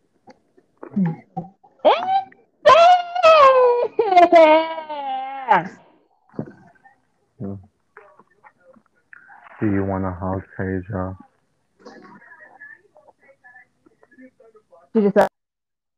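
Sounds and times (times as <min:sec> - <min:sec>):
speech: 0:00.9 - 0:01.5, 0:10.0 - 0:11.3, 0:15.0 - 0:15.3
child crying and wailing in a temper tantrum: 0:01.9 - 0:05.8.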